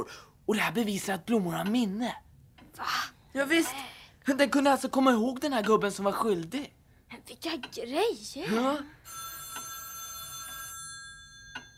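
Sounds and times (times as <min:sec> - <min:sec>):
speech: 0:00.0 - 0:02.2, 0:02.8 - 0:09.2
telephone bell ringing: 0:09.0 - 0:11.7.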